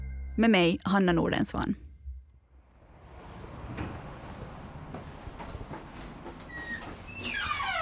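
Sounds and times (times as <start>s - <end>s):
speech: 0.4s - 1.8s
door into premises with coffins creaking as it swings: 5.8s - 7.8s.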